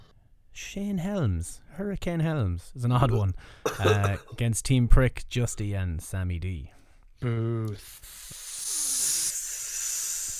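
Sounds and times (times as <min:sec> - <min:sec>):
speech: 0:00.7 - 0:08.4
wrestling crowd hissing at a wrestler like a snake: 0:07.8 - 0:10.3.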